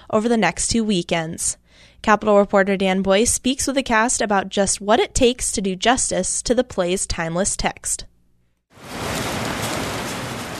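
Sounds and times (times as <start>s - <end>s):
speech: 0.1s - 8.1s
heavy rain and hail in a hailstorm: 8.8s - 10.5s.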